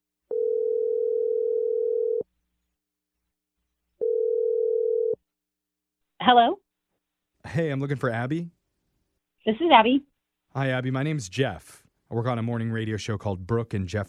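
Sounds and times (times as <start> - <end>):
telephone ringing tones: 0.3 - 2.3, 4.0 - 5.2
speech: 6.3 - 6.6, 7.5 - 8.6, 9.5 - 14.0.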